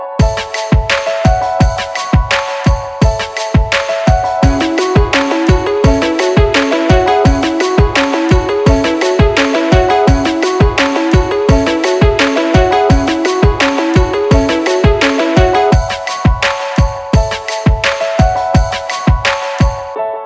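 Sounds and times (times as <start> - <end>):
electronic beats ringtone: 0.2 - 20.0.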